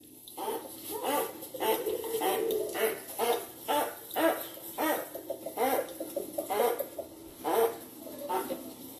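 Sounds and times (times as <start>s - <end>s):
rabbit squeaking: 0.4s - 8.7s.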